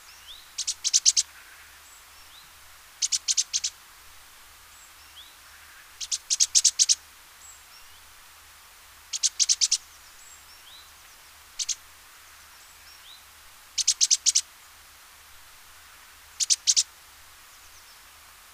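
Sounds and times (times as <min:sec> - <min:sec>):
great tit singing: 0:00.1 - 0:03.7, 0:04.8 - 0:07.0, 0:09.1 - 0:10.9, 0:11.5 - 0:11.8, 0:13.8 - 0:14.5, 0:16.4 - 0:16.9.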